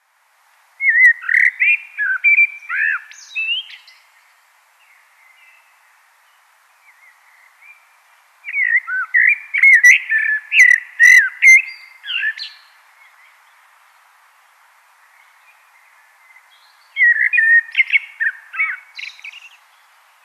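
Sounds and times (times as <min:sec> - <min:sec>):
Common blackbird Turdus merula singing: 0:00.8 - 0:04.1, 0:06.8 - 0:13.4, 0:15.1 - 0:20.2.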